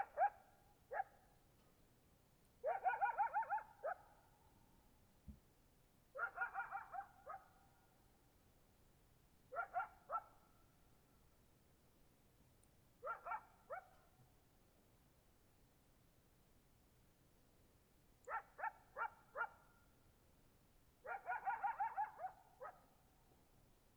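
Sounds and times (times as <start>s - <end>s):
coyote barks in Oregon: 0.0s - 1.2s, 2.6s - 4.2s, 6.1s - 7.6s, 9.5s - 10.4s, 13.0s - 14.0s, 18.2s - 19.7s, 21.0s - 23.0s.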